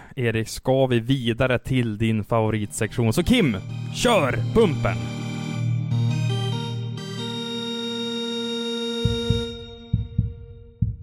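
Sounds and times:
speech: 0.2s - 5.2s
sustained electronic chord: 2.6s - 9.9s
heartbeat sound effect thumps: 9.0s - 11.0s.

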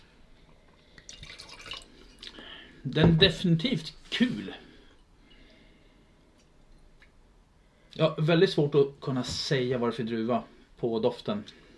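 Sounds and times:
Croatian wine being poured into a glass: 1.0s - 2.3s
speech: 2.8s - 4.6s, 8.0s - 11.6s.

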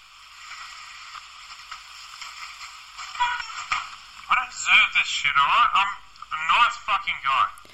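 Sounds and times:
rustling and shuffling of belongings being packed up: 0.2s - 4.5s
speech: 4.7s - 7.7s.

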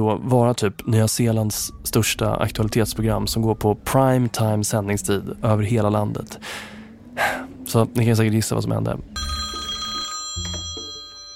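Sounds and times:
speech: 0.0s - 9.4s
telephone ringing: 9.2s - 11.3s.

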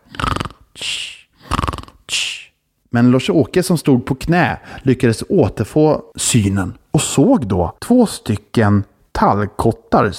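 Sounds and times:
snoring: 0.0s - 0.6s, 1.4s - 2.0s
speech: 2.9s - 10.1s.

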